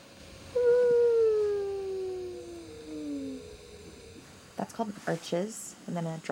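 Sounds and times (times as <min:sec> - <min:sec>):
hiss: 0:00.0 - 0:06.2
whale feeding call: 0:00.5 - 0:04.4
speech: 0:04.6 - 0:06.2.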